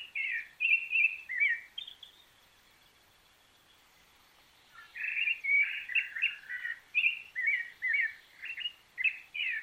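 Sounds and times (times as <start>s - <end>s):
Rufous-bellied thrush song: 0.0s - 2.3s, 4.7s - 9.6s.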